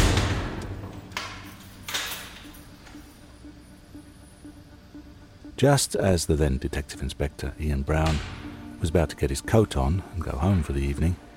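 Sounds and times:
heavy cell door slamming shut: 0.0s - 1.0s, 8.0s - 8.6s
speech: 5.6s - 11.3s.

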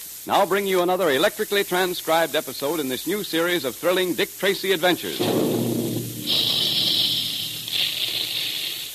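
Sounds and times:
long loud blasts of hissing steam: 0.0s - 8.9s
speech: 0.2s - 5.6s
low rumbling of cereal puffing gun: 5.2s - 8.0s
cereal puffing gun firing at a Quaker plant making puffed wheat and puffed rice: 5.3s - 8.9s.

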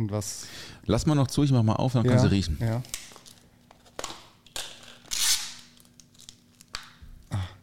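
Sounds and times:
speech: 0.0s - 3.0s
plastic film crinkling: 2.7s - 7.3s.

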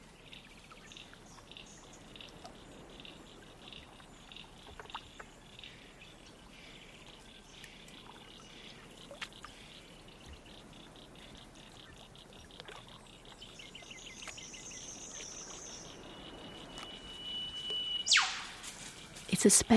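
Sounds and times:
chorus of insects chirping by a lake in New South Wales: 0.0s - 19.7s
sharp loud bird call echoing off large structures: 15.7s - 18.9s
drawn-out whistle: 15.8s - 19.0s
speech: 19.4s - 19.7s.

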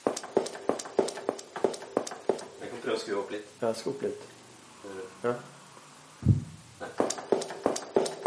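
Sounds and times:
footsteps played on a synthesizer: 0.0s - 2.6s, 6.2s - 8.2s
speech: 2.8s - 5.6s.

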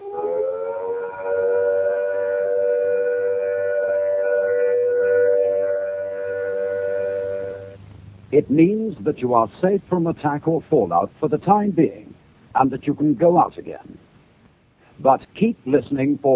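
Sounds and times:
civil defense siren sounding the all-clear after a fallout warning: 0.0s - 7.8s
speech: 8.3s - 13.9s, 15.0s - 16.3s.

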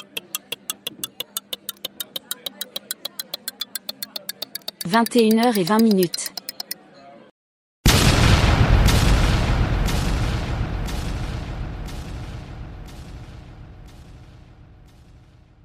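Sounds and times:
murmur of voices: 0.0s - 7.3s
speech: 4.9s - 6.4s
powerful bomb blast with rumbling debris: 7.9s - 15.6s.

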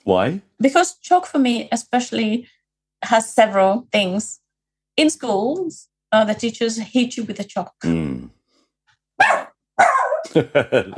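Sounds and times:
speech: 0.0s - 4.4s, 5.0s - 8.4s, 10.3s - 10.9s
dog barking: 9.2s - 10.4s
laughter: 10.3s - 10.9s.

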